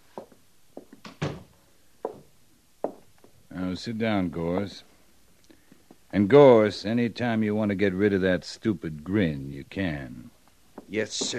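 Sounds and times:
door swinging shut with a solid thump: 1.0s - 1.5s
speech: 3.7s - 4.9s, 6.1s - 10.3s, 10.9s - 11.3s.

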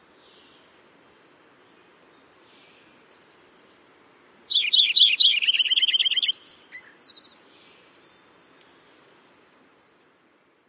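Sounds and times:
Lincoln's Sparrow song: 1.6s - 9.1s.

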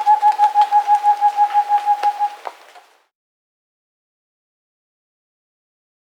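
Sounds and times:
Rufescent screech owl Otus ingens hooting in South America: 0.0s - 2.6s.

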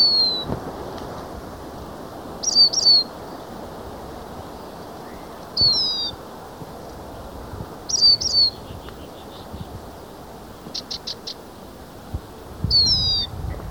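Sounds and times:
lesser goldfinch high descending whistled calls in Ecuador: 0.0s - 0.5s, 2.4s - 3.2s, 5.0s - 6.2s, 7.9s - 9.7s, 10.6s - 11.5s, 12.7s - 13.3s
hissy background: 0.0s - 13.7s.

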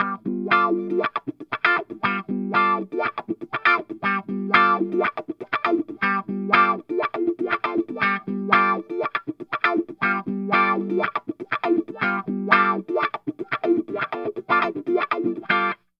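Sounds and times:
funk guitar playing a G9 chord: 0.0s - 15.8s.

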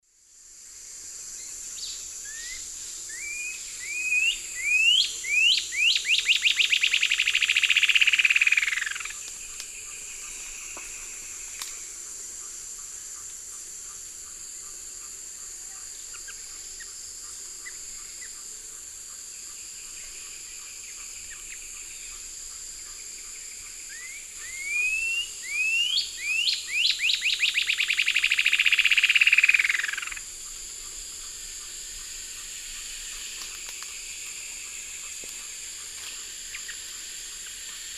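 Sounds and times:
Thamnomanes caesius song in the Eastern Lowlands of South America: 1.4s - 11.1s, 19.4s - 31.7s.

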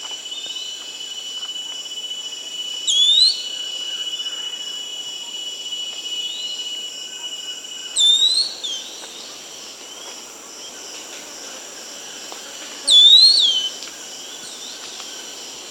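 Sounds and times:
constant high-pitched insect drone in South America: 0.0s - 15.6s
Pink-throated Becard song of clear slurred whistled notes: 2.8s - 3.7s, 7.9s - 9.1s, 12.9s - 13.8s.

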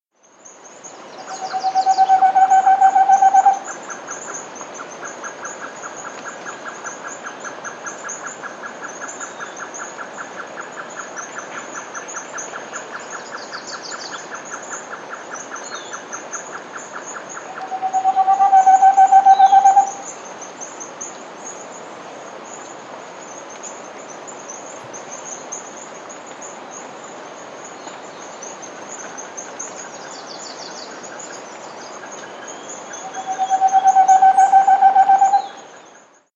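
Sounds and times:
Moustached Antpitta calling in South America: 1.2s - 3.7s, 17.4s - 20.1s, 33.0s - 35.6s.

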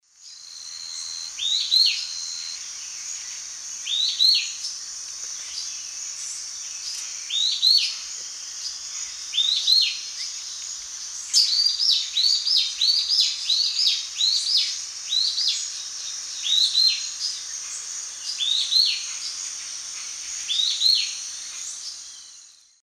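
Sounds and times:
Hylophylax punctulatus duet in South American eastern lowlands: 0.1s - 22.8s.

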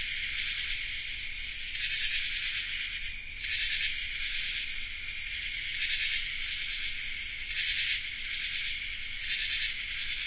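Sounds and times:
dense common true katydid chorus in North America: 0.0s - 10.2s.

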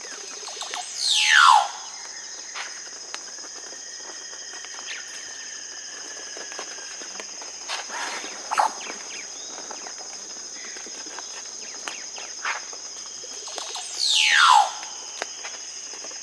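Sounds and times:
constant shrill insect tone: 0.0s - 16.2s
casqued oropendola loud slurred downward glide in South America: 0.8s - 2.0s, 13.6s - 15.1s.

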